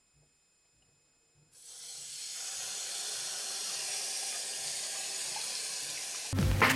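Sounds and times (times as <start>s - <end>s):
water gushing from a tap: 1.6s - 6.4s.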